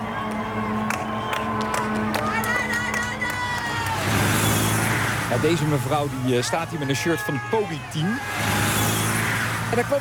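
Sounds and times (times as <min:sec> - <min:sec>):
roadside crowd cheering at a cycling race stage: 0:00.0 - 0:09.9
speech: 0:05.4 - 0:08.6, 0:09.7 - 0:09.9.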